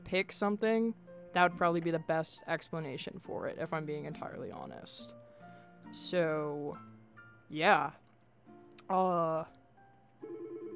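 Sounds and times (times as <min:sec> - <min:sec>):
speech: 0:00.1 - 0:05.2, 0:05.9 - 0:06.9, 0:07.5 - 0:08.0, 0:08.9 - 0:09.6
telephone ringing with buzzy electronic tone and warbling ring: 0:10.2 - 0:10.7.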